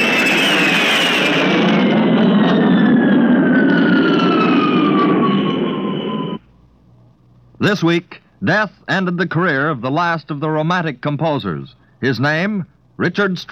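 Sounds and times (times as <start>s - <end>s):
jet bomber diving at high speed low over a crowd at an airfield: 0.0s - 6.4s
speech: 7.6s - 13.4s.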